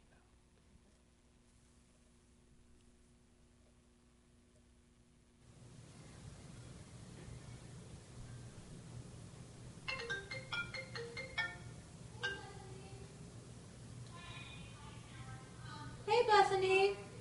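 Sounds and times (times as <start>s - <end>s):
low hum: 0.0s - 17.1s
melodic phone ringtone chiming: 9.9s - 12.6s
speech: 16.3s - 17.0s.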